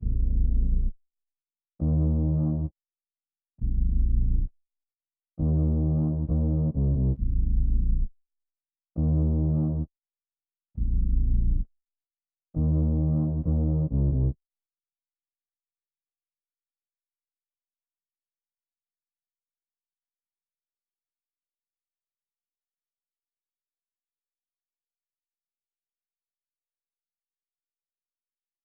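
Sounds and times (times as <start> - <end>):
134 BPM bass line in A sharp minor: 0.0 - 0.9, 1.8 - 2.7, 3.6 - 4.5, 5.4 - 8.1, 9.0 - 9.9, 10.8 - 11.6, 12.6 - 14.4.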